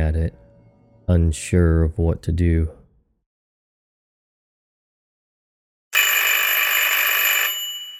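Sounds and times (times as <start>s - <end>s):
speech: 0.0s - 0.4s, 1.1s - 2.8s
wall telephone in a flat ringing with metallic bell clatter: 6.0s - 7.9s.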